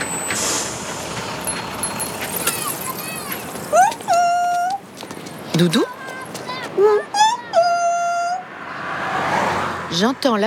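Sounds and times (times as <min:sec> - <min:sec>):
red double-decker bus engine and traffic rumble: 0:00.0 - 0:10.4
sharp hissing burst: 0:00.3 - 0:01.8
speech: 0:05.6 - 0:06.0, 0:06.8 - 0:07.0, 0:10.0 - 0:10.4.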